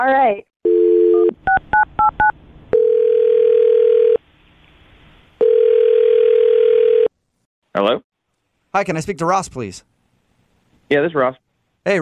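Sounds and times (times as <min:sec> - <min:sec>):
speech: 0:00.0 - 0:00.5, 0:07.8 - 0:08.1, 0:08.7 - 0:09.9, 0:10.9 - 0:12.0
telephone ringback tone: 0:00.7 - 0:04.2, 0:05.4 - 0:07.1
telephone dial tone: 0:02.8 - 0:04.2, 0:05.4 - 0:07.1.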